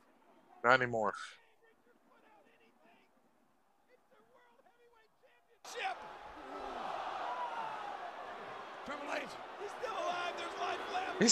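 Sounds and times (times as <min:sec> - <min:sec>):
speech: 0:00.6 - 0:01.4, 0:08.9 - 0:10.5
sharp shouts: 0:05.7 - 0:11.2
wrestling arena crowd booing: 0:05.7 - 0:11.2.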